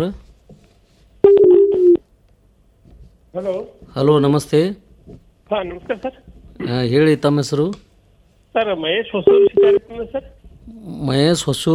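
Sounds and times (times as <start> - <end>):
speech: 0.0 - 0.2, 3.4 - 7.9, 8.5 - 11.7
telephone tone on a phone-in line: 1.2 - 2.0, 9.3 - 9.8.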